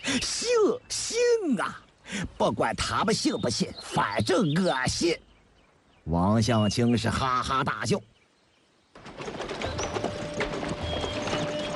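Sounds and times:
speech: 0.2 - 5.3, 6.0 - 8.1
horse hooves clip-clopping as a horse-drawn carriage crosses grassland: 9.0 - 11.7.

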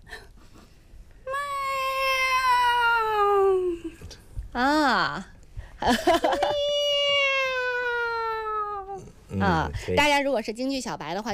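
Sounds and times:
person imitating a kitten meow as a Peking opera falsetto exercise: 1.3 - 3.9, 6.4 - 9.1
speech: 4.6 - 6.7, 9.4 - 11.3.

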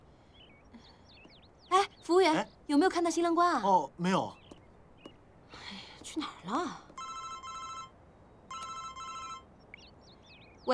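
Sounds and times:
speech: 1.7 - 4.4, 6.1 - 6.8
telephone ringing in electronic bursts: 6.9 - 9.5.

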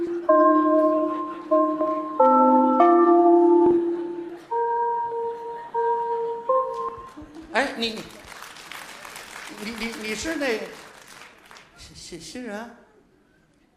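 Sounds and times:
ringing melody of bell-like chimes: 0.0 - 7.3
speech: 7.8 - 8.1, 12.1 - 12.8.

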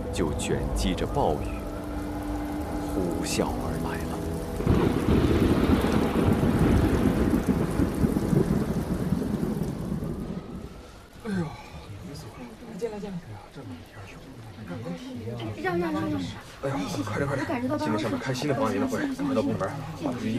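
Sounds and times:
typhoon thunder rumbling: 0.0 - 12.6
heavy typhoon rain pouring: 0.0 - 20.3.

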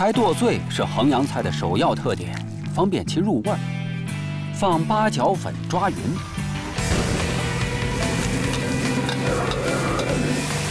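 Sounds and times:
speech: 0.0 - 3.8, 4.6 - 6.3
chopped frog meat with star anise powder stir-frying in a wok: 5.6 - 10.6.

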